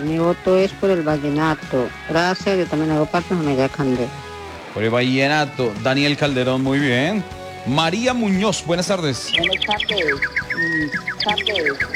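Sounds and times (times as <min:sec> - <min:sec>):
speech: 0:00.0 - 0:11.9
small birds chirping: 0:08.2 - 0:11.9
lower bird calls: 0:09.1 - 0:11.9.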